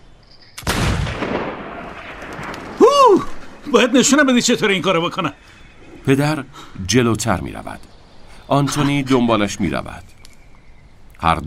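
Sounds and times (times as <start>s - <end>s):
hunting rifle shot echoing across open ground: 0.6s - 2.8s
speech: 3.7s - 10.2s, 11.2s - 11.4s.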